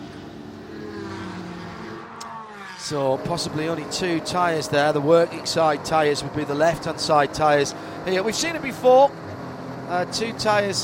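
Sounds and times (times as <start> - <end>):
race car engine roaring as it accelerates away from a pit stop: 0.0 - 10.8
speech: 2.9 - 9.2, 9.9 - 10.8.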